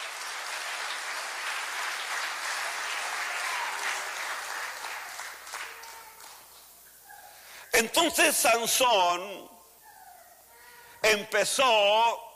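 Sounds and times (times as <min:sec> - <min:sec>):
audience applauding: 0:00.0 - 0:06.8
speech: 0:07.8 - 0:09.5, 0:11.0 - 0:12.3.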